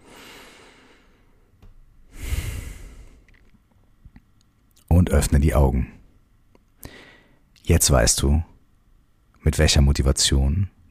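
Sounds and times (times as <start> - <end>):
deep breath in and out: 0.0 - 1.4, 2.1 - 3.4, 6.8 - 7.5
speech: 5.1 - 6.0, 7.7 - 8.5, 9.4 - 10.8.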